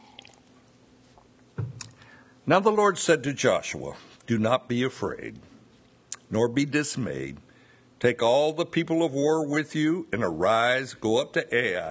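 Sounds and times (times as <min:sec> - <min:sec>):
sip of water: 0:00.0 - 0:00.6
speech: 0:02.5 - 0:05.5, 0:06.3 - 0:07.4, 0:08.0 - 0:11.8.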